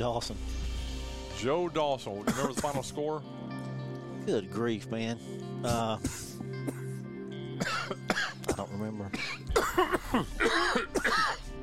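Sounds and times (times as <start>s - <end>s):
speech: 0.0s - 0.6s, 1.4s - 3.5s, 4.2s - 6.8s, 8.8s - 11.4s
rough coughs: 2.2s - 2.9s, 5.6s - 11.5s
throat clearing: 2.3s - 2.8s, 5.6s - 6.8s, 7.6s - 11.4s.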